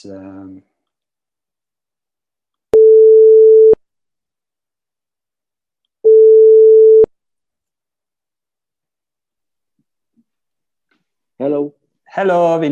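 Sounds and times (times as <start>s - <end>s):
speech: 0.0s - 0.7s, 11.4s - 12.7s
telephone ringback tone while a call is placed: 2.8s - 3.8s, 6.0s - 7.1s.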